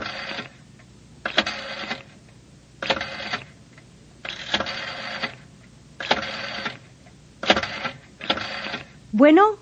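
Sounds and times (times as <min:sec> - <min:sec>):
public telephone dial whirring and clicking: 0:00.0 - 0:00.6, 0:01.2 - 0:02.2, 0:02.8 - 0:03.6, 0:04.2 - 0:09.0
speech: 0:09.2 - 0:09.6.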